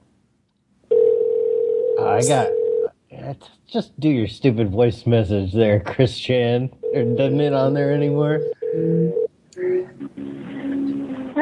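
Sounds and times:
telephone line ringing: 0.9s - 2.9s, 6.8s - 7.7s, 8.4s - 9.3s
speech: 2.1s - 2.6s, 3.3s - 10.0s.

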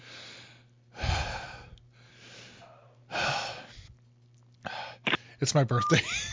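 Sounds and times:
exaggerated heavy panting into a microphone: 0.0s - 3.9s
speech: 5.4s - 6.3s.

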